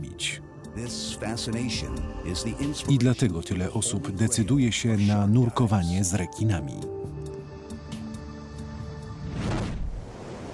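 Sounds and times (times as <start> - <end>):
speech: 0.2 - 7.1
heavy winter storm wave crashing against the shoreline at the Cape of Good Hope: 9.2 - 10.5.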